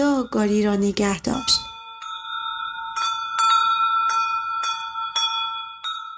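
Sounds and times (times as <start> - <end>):
small bells jingling: 0.0 - 6.1
speech: 0.2 - 1.7.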